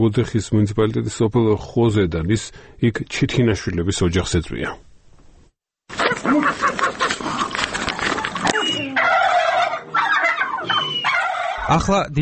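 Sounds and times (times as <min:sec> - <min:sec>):
speech: 0:00.0 - 0:04.9, 0:05.9 - 0:06.6, 0:11.7 - 0:12.2
turkey gobbling in a village farmyard: 0:05.9 - 0:11.8.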